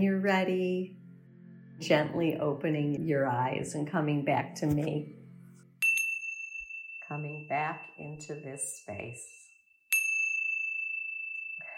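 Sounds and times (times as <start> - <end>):
speech: 0.0 - 1.0, 1.8 - 5.2, 7.1 - 9.4
meditation chime ringing: 5.3 - 11.7.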